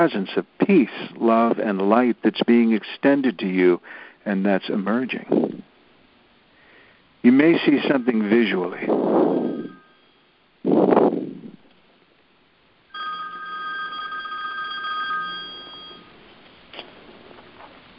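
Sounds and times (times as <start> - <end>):
speech: 0.0 - 5.4, 7.2 - 9.2
telephone ringing with electronic trill: 7.3 - 10.2, 12.9 - 16.3.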